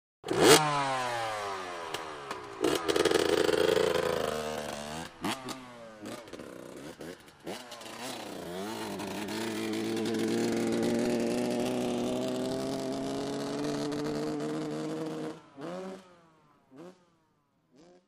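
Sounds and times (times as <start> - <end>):
125 motocross motorcycle revving: 0.2 - 18.0.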